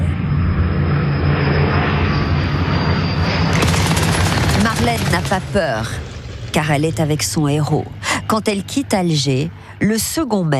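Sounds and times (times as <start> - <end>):
Royal Air Force aircraft engine drone in a night sky: 0.0 - 10.5
Royal Air Force gunfire in the night sky: 3.5 - 5.6
speech: 5.1 - 10.5.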